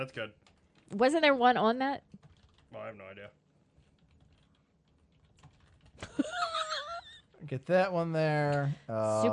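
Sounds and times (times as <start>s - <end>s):
speech: 0.0s - 3.4s, 7.4s - 9.3s
typing on a computer keyboard: 0.2s - 0.9s, 2.1s - 2.9s, 3.8s - 6.2s.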